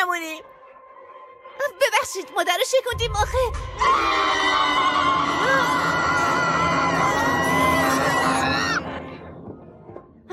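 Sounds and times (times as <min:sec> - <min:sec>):
speech: 0:00.2 - 0:00.6, 0:02.0 - 0:04.9
frightened half-seal creature screaming: 0:03.8 - 0:08.8.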